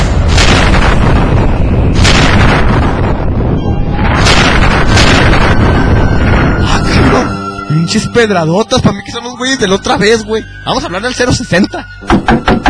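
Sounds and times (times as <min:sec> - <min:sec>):
constant roaring rumble of a sci-fi proton ray: 0:00.0 - 0:07.4
sci-fi proton ray fired at a gate as explosive booming blasts: 0:00.0 - 0:07.4
speech: 0:07.9 - 0:12.6.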